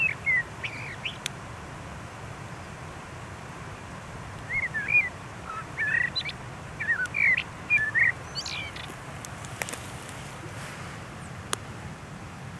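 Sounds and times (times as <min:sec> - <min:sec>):
common blackbird Turdus merula squeaky slurred calls: 0:00.0 - 0:01.3, 0:04.4 - 0:11.4
faint clicks: 0:07.0 - 0:10.7.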